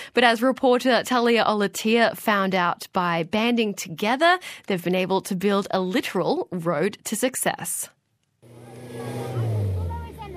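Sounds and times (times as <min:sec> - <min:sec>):
speech: 0:00.1 - 0:08.0
coffee truck engine roaring and straining in mud in the Sarawaget Ranges: 0:08.4 - 0:10.3
indistinct voices of coffee farmers: 0:08.8 - 0:10.3.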